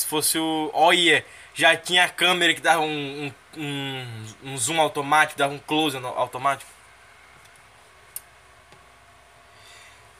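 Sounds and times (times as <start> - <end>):
electric fan whirring: 0.0 - 10.1
speech: 0.1 - 6.8
quiet ticks and clicks: 7.4 - 8.9.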